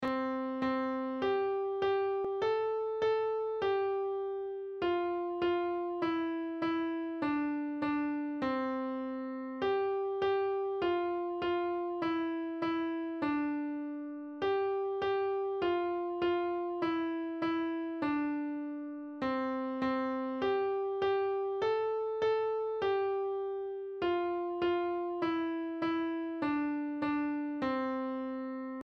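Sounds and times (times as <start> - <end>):
piano melody: 0.0 - 28.8.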